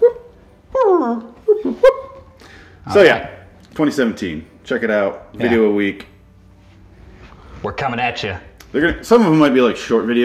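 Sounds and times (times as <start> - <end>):
dog whimpering: 0.0 - 2.2
speech: 1.0 - 1.9, 2.8 - 6.1, 7.6 - 10.2.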